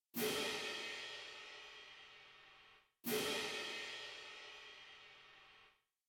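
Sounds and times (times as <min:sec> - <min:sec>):
struck cymbals: 0:00.2 - 0:02.2, 0:03.0 - 0:05.3.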